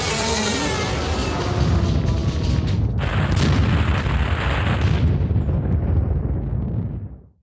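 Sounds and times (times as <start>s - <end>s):
depository building exploding and collapsing: 0.2s - 7.4s
heavy cannon blasts: 1.6s - 7.1s.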